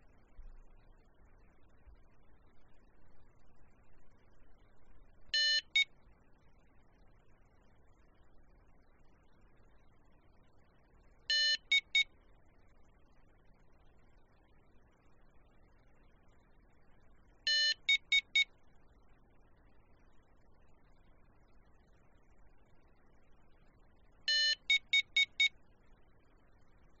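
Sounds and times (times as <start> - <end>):
morse code tones: 5.3 - 5.9, 11.3 - 12.1, 17.5 - 18.5, 24.3 - 25.5.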